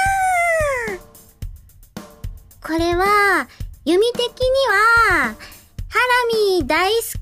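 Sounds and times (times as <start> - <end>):
person imitating a stray cat meowing: 0.0 - 1.0
speech: 2.7 - 7.2.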